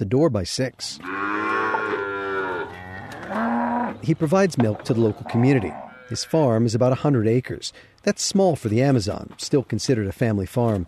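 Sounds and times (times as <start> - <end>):
speech: 0.0 - 1.3, 3.3 - 10.8
dairy cows mooing on a small family farm in the Amazon: 1.0 - 4.2, 4.8 - 6.4.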